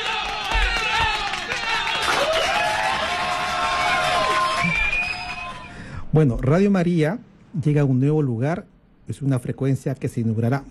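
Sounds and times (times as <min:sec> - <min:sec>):
large crowd cheering with shrill whoops and shouts: 0:00.0 - 0:05.9
speech: 0:06.2 - 0:10.6.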